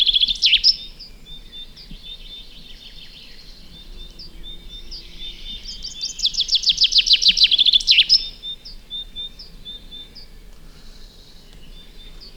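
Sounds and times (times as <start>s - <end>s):
common chaffinch Fringilla coelebs song: 0.0s - 12.3s.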